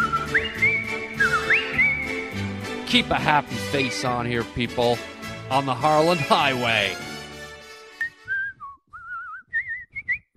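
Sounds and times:
person whistling a short, bright tune: 0.0s - 2.4s, 8.0s - 10.3s
brief musical tone: 0.0s - 4.0s
speech: 2.9s - 7.0s.

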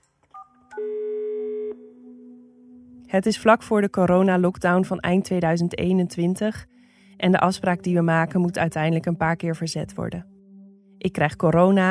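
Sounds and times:
telephone keypad tones dialing a call: 0.3s - 1.8s
quieter, lower steady telephone tone: 0.3s - 2.9s
loud sustained telephone tone: 0.4s - 2.5s
speech: 3.1s - 10.3s, 11.0s - 11.8s.

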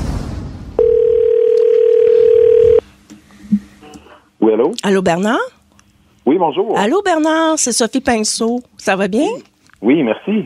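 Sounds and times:
telephone dial tone while a call is placed: 0.8s - 2.8s
speech: 4.5s - 5.6s, 6.3s - 10.4s.

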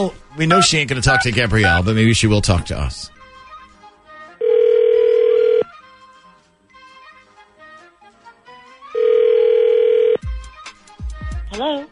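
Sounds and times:
speech: 0.0s - 3.2s
faint music: 0.0s - 11.9s
outgoing phone call ringback tone on the line: 0.5s - 1.9s, 4.4s - 5.7s, 9.0s - 10.2s.

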